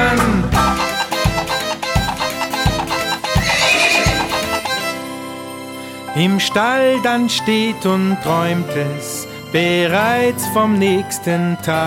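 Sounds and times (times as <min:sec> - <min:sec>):
steady rhythmic low thumps like galloping hooves: 0:00.0 - 0:04.9
pony whinnying: 0:03.0 - 0:05.0
speech: 0:06.2 - 0:11.8.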